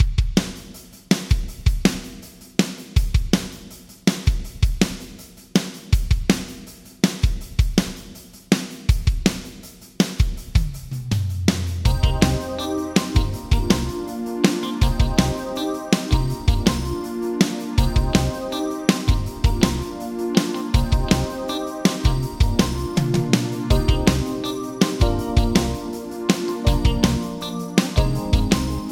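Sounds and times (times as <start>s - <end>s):
drums with Yamaha ProR3 plate reverb: 0.0s - 28.8s.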